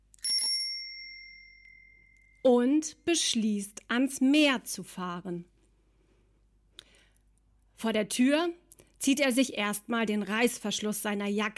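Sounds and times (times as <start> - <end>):
old bell on a dusty bicycle ringing: 0.2 - 2.4
speech: 2.4 - 5.5, 7.8 - 11.5.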